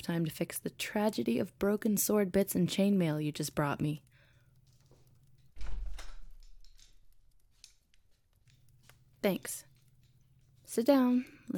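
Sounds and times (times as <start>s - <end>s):
speech: 0.0s - 4.1s, 9.2s - 9.7s, 10.7s - 11.5s
door clicking and rattling as it settles: 5.4s - 7.4s
door swinging shut with a heavy booming thud: 5.6s - 6.6s.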